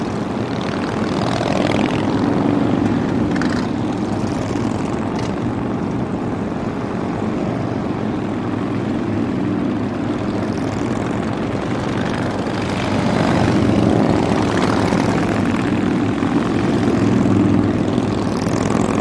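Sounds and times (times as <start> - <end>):
many motorcycles idling and rumbling at the Black Hills motorcycle rally: 0.0 - 19.0.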